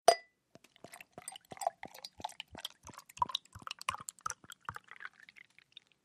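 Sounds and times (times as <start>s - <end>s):
beer pouring from a bottle into a glass: 0.6s - 6.0s.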